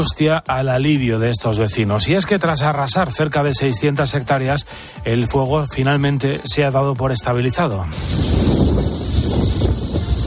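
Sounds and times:
speech: 0:00.0 - 0:09.0
strong tramontana wind blowing at night: 0:07.9 - 0:10.2.

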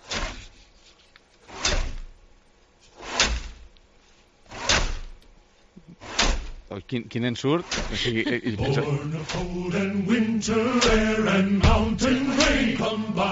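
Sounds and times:
saws rasping through ice: 0:00.0 - 0:02.0, 0:02.8 - 0:03.6, 0:04.5 - 0:05.0, 0:06.0 - 0:06.4
speech: 0:06.7 - 0:13.3
laughter: 0:07.8 - 0:13.3.

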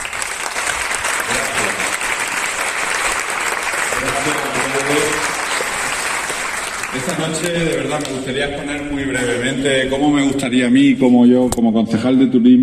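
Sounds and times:
sustained dense applause from a sizable audience: 0:00.0 - 0:08.5
speech: 0:07.0 - 0:12.6.

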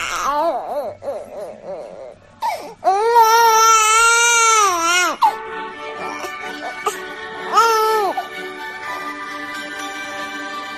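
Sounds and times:
baby crying through a tantrum: 0:00.0 - 0:05.4, 0:06.0 - 0:09.2.

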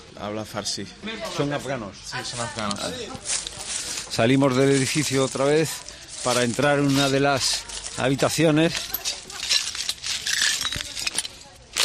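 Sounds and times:
speech: 0:00.2 - 0:09.2
shards of broken glass crunching underfoot in a building room: 0:02.6 - 0:11.8.

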